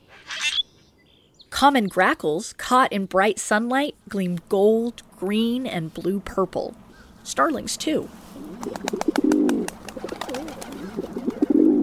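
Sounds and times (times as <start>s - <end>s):
speech: 1.6s - 9.0s
rock pigeon cooing: 8.3s - 11.8s.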